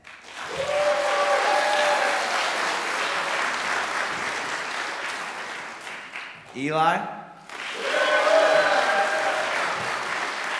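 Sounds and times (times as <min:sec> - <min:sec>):
crowd applauding: 0:00.0 - 0:06.6, 0:07.4 - 0:10.5
raised voices whooping: 0:00.4 - 0:03.2, 0:07.8 - 0:10.1
speech: 0:06.6 - 0:07.2.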